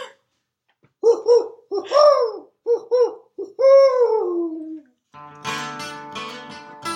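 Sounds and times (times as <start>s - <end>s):
owl hooting: 1.0s - 4.8s.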